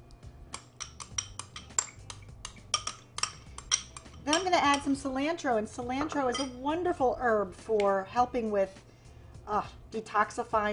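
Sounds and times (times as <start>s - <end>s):
utensil mixing ricotta cheese and eggs in a bowl: 0.5s - 6.6s
speech: 4.3s - 8.9s, 9.5s - 10.7s.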